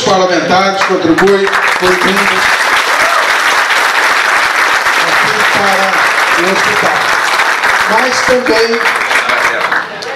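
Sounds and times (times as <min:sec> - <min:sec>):
speech: 0:00.1 - 0:02.6, 0:05.6 - 0:07.2, 0:07.9 - 0:09.0
crowd applauding: 0:00.7 - 0:10.1.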